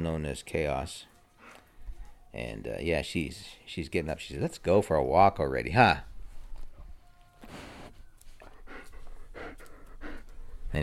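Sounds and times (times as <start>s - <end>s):
speech: 0.0s - 1.1s, 2.3s - 6.1s
dog snuffling: 7.4s - 10.8s
dog panting: 8.3s - 10.8s.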